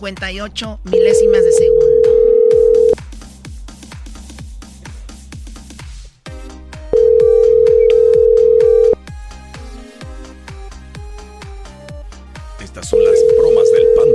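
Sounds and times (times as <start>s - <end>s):
speech: 0.0s - 2.6s
steady telephone dial tone: 1.0s - 3.0s, 7.0s - 9.0s, 13.0s - 14.1s.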